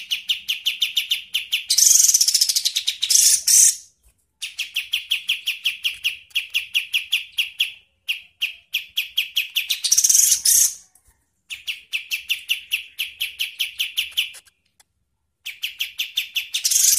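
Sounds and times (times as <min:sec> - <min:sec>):
songbird training song of sharp bright chirps: 0:00.0 - 0:16.9.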